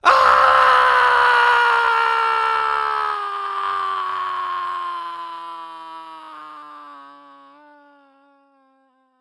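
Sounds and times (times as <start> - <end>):
cartoon human male screaming while falling: 0.0 - 6.6.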